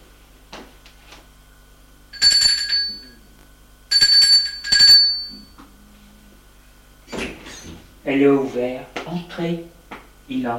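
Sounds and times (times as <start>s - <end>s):
harsh buzzing doorbell ringing at a home: 2.1s - 3.3s, 3.9s - 5.6s
speech: 8.1s - 9.7s, 10.3s - 10.5s.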